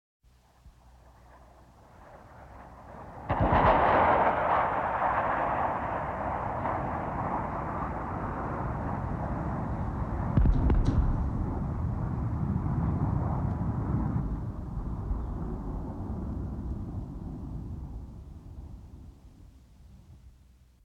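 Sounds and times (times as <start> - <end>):
air force Falcon missile destroying a guided rocket: 2.2 - 16.0.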